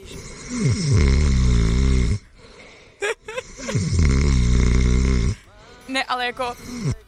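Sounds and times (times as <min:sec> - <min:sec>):
voice imitating a child's loud snoring: 0:00.0 - 0:02.3, 0:03.4 - 0:05.4, 0:06.5 - 0:07.0
speech: 0:00.5 - 0:01.4, 0:06.2 - 0:07.0.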